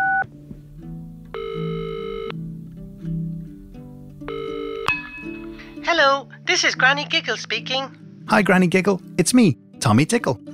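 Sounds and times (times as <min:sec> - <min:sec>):
soft bouncy music bed: 0:00.0 - 0:10.5
phone ringing on outgoing call with buzzy electronic bursts: 0:01.4 - 0:02.4, 0:04.3 - 0:05.0
speech: 0:06.0 - 0:10.5.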